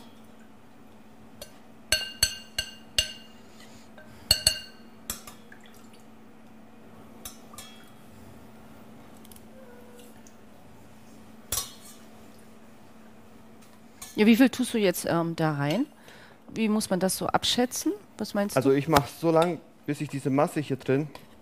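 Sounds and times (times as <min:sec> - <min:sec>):
spoon clinking against a small bowl while stirring a sugar-and-liquid mass: 0:01.4 - 0:03.3, 0:04.3 - 0:05.2
speech: 0:14.2 - 0:21.3.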